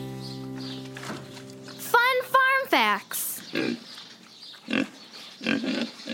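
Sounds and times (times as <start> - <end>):
speech: 2.7 - 3.9
pigs grunting and oinking: 3.4 - 4.0, 4.6 - 6.1.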